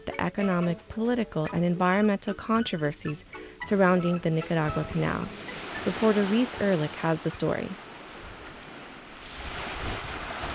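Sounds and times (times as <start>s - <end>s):
speech: 0.2s - 7.9s
gentle waves lapping against the shore of Ometepe Island in Lake Nicaragua: 4.1s - 10.5s.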